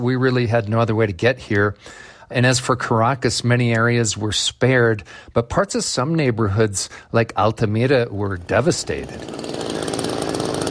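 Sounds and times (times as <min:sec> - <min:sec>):
speech: 0:00.0 - 0:09.8
chainsaw cutting a tunnel through collapsed high-rise apartment building rubble: 0:08.7 - 0:10.6.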